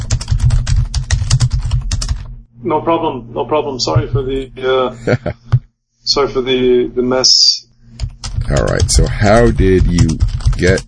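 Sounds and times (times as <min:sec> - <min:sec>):
typing on a computer keyboard: 0:00.0 - 0:02.3, 0:08.0 - 0:10.8
speech: 0:02.6 - 0:07.5, 0:08.5 - 0:10.8.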